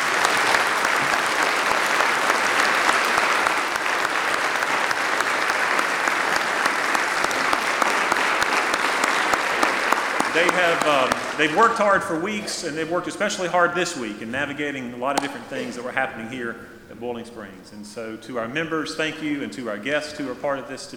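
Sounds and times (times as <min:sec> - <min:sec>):
large audience applauding a choir and orchestra: 0:00.0 - 0:11.7
speech: 0:10.4 - 0:20.9.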